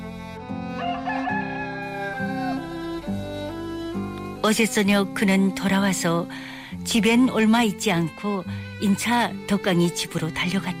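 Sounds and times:
rooster crowing: 0.7 - 3.0
speech: 4.5 - 10.7.

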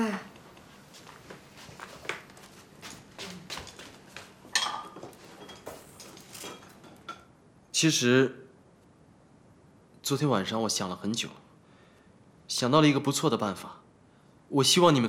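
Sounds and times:
bowls and chopsticks being set out for breakfast: 4.5 - 7.3
speech: 7.8 - 8.4, 10.1 - 11.4, 12.6 - 13.8, 14.5 - 15.0.

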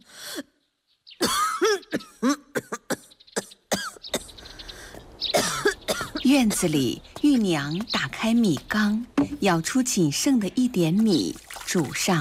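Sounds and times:
elderly woman coughing in harsh raspy fits: 1.2 - 4.3, 5.3 - 6.2
speech: 6.4 - 12.2.

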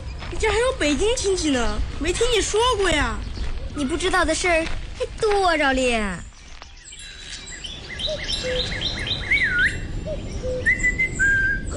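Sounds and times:
speech: 0.3 - 6.3, 8.1 - 8.8
student whistling in imitation of birdsong: 8.1 - 11.7.

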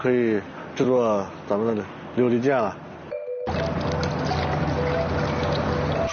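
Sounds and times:
speech: 0.0 - 2.8
water pouring onto very fine flour-like ground soil: 3.5 - 6.1.

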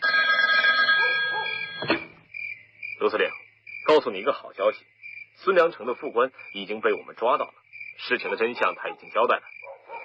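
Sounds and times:
telephone ringing as a sound effect in a dramatized story: 0.0 - 2.1
speech: 3.0 - 9.6.

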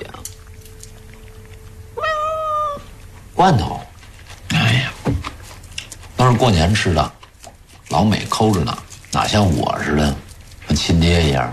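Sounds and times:
faint low hum: 0.0 - 11.5
cat meowing: 1.9 - 3.0
speech: 3.4 - 3.8, 6.4 - 7.2, 7.9 - 11.5.

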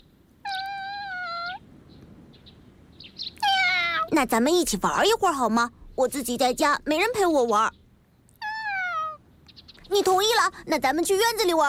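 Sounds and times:
cat meowing: 0.4 - 1.6, 3.4 - 4.2, 8.4 - 9.2
speech: 4.1 - 7.7, 10.0 - 11.6.

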